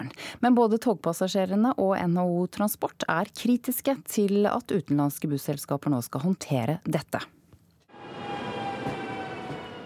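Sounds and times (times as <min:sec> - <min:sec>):
speech: 0:00.0 - 0:07.4
train passing on rails: 0:07.9 - 0:09.8.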